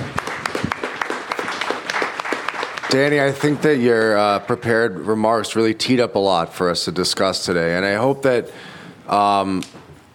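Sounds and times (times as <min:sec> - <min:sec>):
audience applauding at a panel discussion: 0:00.0 - 0:04.9
speech: 0:02.9 - 0:10.1.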